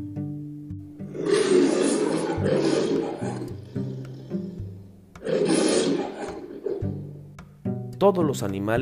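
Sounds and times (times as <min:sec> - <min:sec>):
lion roaring loudly: 0:01.0 - 0:07.3
speech: 0:08.1 - 0:08.8.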